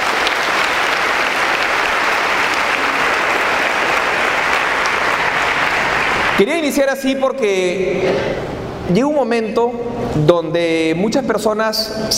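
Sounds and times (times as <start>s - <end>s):
crowd applauding: 0.0s - 6.8s
speech: 6.4s - 12.1s.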